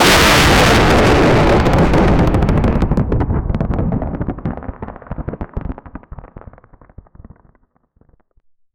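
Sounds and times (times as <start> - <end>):
intense electric crackling: 0.0 - 7.0
thunder: 0.0 - 7.5.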